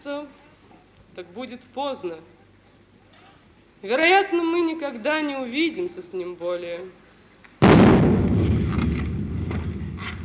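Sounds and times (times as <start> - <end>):
speech: 1.2 - 2.4, 3.8 - 7.0
cannon salute shot booming: 7.6 - 10.2.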